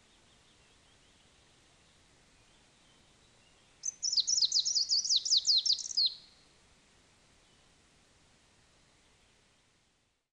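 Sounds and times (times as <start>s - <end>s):
greenish warbler subspecies viridanus singing a high twittering phrase: 0.0s - 6.4s.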